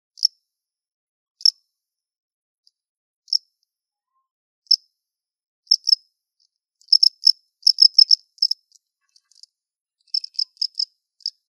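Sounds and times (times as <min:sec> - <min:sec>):
Acheta domesticus chirping: 0:05.7 - 0:06.0, 0:06.8 - 0:11.4.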